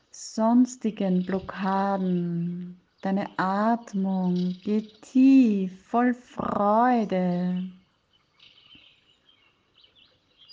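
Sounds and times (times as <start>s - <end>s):
faint birdsong with thin high chirps and twitters: 0.0s - 10.5s
soft hiss: 0.0s - 10.5s
speech: 0.3s - 7.8s.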